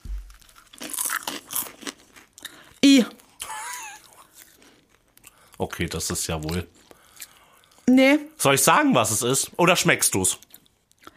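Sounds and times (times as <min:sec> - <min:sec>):
crunching of a puffy snack being bitten and chewed: 0:00.0 - 0:03.4, 0:04.0 - 0:07.8
speech: 0:03.0 - 0:03.2, 0:05.6 - 0:06.9, 0:07.9 - 0:10.5.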